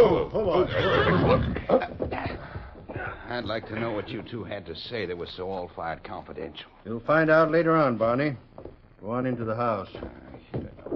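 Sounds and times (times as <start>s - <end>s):
speech: 0.0s - 1.8s, 3.3s - 10.5s
horses neighing as riders rein up: 0.0s - 4.0s.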